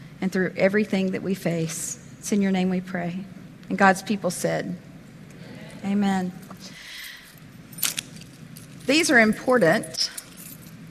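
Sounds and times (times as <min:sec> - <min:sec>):
low steady hum: 0:00.0 - 0:10.9
speech: 0:00.2 - 0:04.9, 0:05.8 - 0:06.8, 0:08.9 - 0:10.2
keys jangling in hand: 0:06.3 - 0:10.9.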